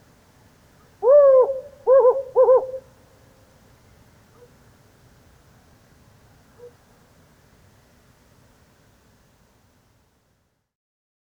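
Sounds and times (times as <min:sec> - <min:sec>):
male Hume's owl giving compound wavering hoots during a lunar eclipse: 0:01.0 - 0:03.0.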